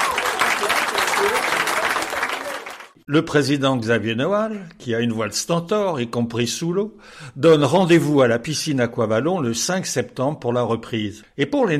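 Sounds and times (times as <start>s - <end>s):
sizable crowd applauding someone who passed a difficult diploma: 0.0s - 3.0s
speech: 3.1s - 11.7s.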